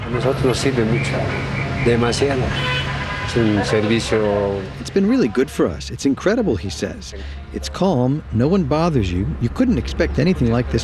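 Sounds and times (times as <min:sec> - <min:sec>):
car horns honking: 0:00.0 - 0:04.8
congested city traffic rumble on the winding streets of La Paz: 0:00.0 - 0:10.8
speech: 0:00.1 - 0:10.8.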